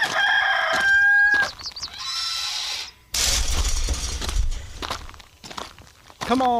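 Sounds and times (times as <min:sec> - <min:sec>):
rooster crowing: 0:00.0 - 0:01.6
rattling clattering noise: 0:03.2 - 0:05.2
speech: 0:06.3 - 0:06.5.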